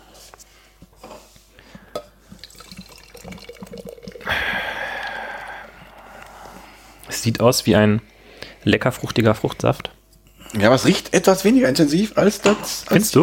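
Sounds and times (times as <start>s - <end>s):
beer pouring from a can: 2.3s - 4.3s
speech: 7.2s - 9.9s, 10.6s - 13.2s.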